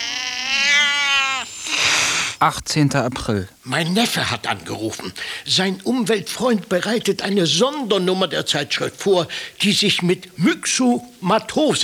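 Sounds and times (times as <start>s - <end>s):
male cat meowing while being carried: 0.0s - 2.4s
speech: 2.4s - 11.8s.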